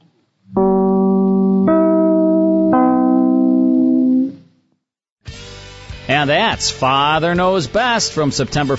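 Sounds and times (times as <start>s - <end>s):
three-note broadcast chimes: 0.6s - 4.5s
speech: 6.2s - 8.7s.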